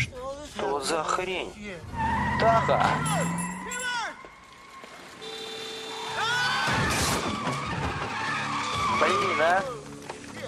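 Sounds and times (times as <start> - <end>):
speech: 0.5 - 3.5, 9.0 - 9.8
car engine rumbling: 1.3 - 8.2
tires squealing in skids: 1.7 - 10.4
car crashing into another car: 6.6 - 8.3.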